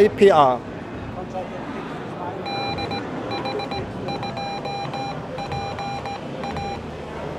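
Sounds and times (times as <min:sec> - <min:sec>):
speech: 0:00.0 - 0:00.7
constant rushing noise and murmur: 0:00.0 - 0:07.3
Morse code call sign keyed as tone beeps: 0:02.4 - 0:06.8.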